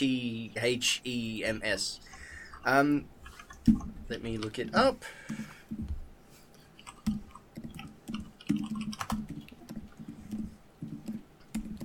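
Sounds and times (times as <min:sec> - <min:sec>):
speech: 0:00.0 - 0:05.9
typing on a keyboard: 0:06.8 - 0:11.8.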